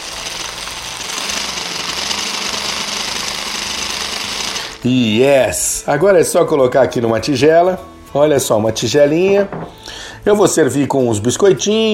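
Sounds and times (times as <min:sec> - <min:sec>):
food processor motor blending cooked beans into a smooth paste: 0:00.0 - 0:04.8
speech: 0:04.8 - 0:11.9.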